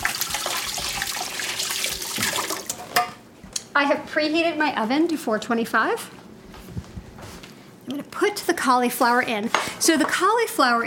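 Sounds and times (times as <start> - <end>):
kitchen tap running as oily hands are rinsed during cooking: 0.0 - 2.8
speech: 3.8 - 6.2, 7.9 - 10.8.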